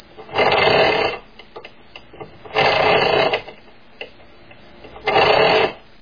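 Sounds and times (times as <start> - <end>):
noisy creaking chainsaw: 0.3 - 1.2, 2.5 - 3.5, 5.0 - 5.8.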